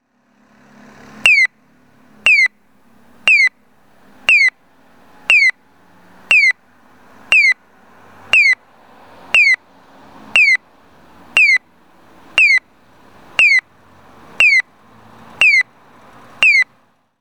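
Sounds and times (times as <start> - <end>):
Nisshin EA9101D piyo chirp signal in Kurayoshi: 1.2 - 1.6, 2.2 - 2.6, 3.2 - 3.6, 4.3 - 4.6, 5.3 - 5.6, 6.3 - 6.6, 7.3 - 7.6, 8.3 - 8.6, 9.3 - 9.6, 10.4 - 10.6, 11.4 - 11.6, 12.4 - 12.7, 13.4 - 13.6, 14.4 - 14.7, 15.4 - 15.7, 16.4 - 16.7.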